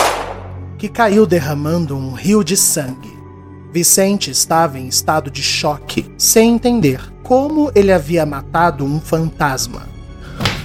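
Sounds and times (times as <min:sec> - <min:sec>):
gunshot: 0:00.0 - 0:00.6
faint music: 0:00.0 - 0:10.6
speech: 0:00.8 - 0:09.9.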